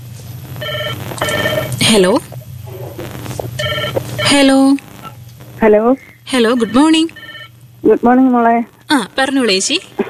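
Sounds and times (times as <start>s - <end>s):
steady low hum: 0.0s - 10.0s
telephone ringing for an incoming listener call on a community radio phone-in: 0.6s - 1.7s, 3.6s - 4.4s, 6.3s - 7.5s
speech: 1.9s - 2.4s, 4.3s - 4.8s, 5.6s - 7.2s, 7.8s - 9.9s.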